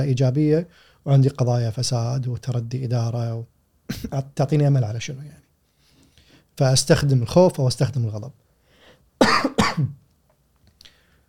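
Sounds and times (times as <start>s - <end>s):
speech: 0.0s - 5.4s, 6.6s - 8.4s, 9.2s - 10.0s
person coughing: 3.9s - 4.2s, 9.2s - 10.0s
faint sniff: 5.6s - 6.5s
rough clearing of the throat: 9.2s - 10.0s.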